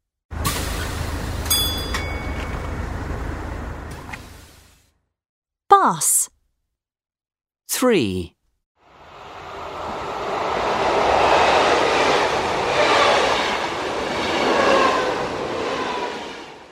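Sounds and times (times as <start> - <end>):
train passing: 0.4 - 4.1, 8.8 - 16.7
speech: 5.8 - 6.4, 7.7 - 8.4.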